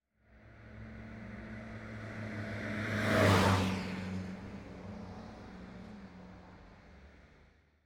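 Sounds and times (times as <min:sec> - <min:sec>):
fast-moving passenger car: 0:02.2 - 0:04.6.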